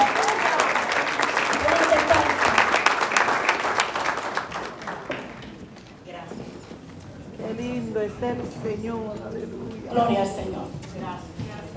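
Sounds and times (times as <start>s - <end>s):
large crowd clapping: 0.0s - 5.8s
speech: 8.2s - 11.6s.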